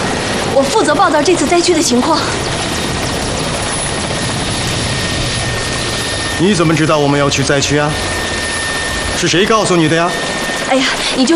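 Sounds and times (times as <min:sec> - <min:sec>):
helicopter engine roar with constant high whine: 0:00.0 - 0:11.3
speech: 0:00.6 - 0:02.7, 0:06.4 - 0:08.2, 0:09.2 - 0:11.3.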